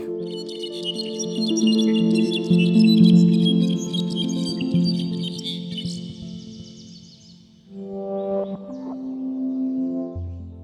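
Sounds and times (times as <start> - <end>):
brown-backed solitaire singing a rapid tinkling fluty song: 0.0 - 10.6
forest chorus of other birds and droning tones: 0.0 - 10.6.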